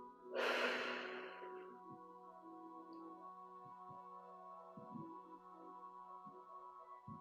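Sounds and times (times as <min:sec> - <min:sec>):
soft steady drone-like background: 0:00.0 - 0:07.2
slow deep breathing in and out: 0:00.3 - 0:01.7.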